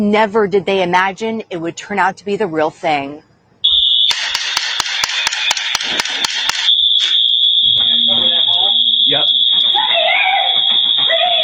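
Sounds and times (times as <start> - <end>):
speech: 0.0 - 3.3
loud piercing alarm ringing during a school shooter drill: 3.6 - 11.4
sharp clicking strikes: 4.0 - 7.2.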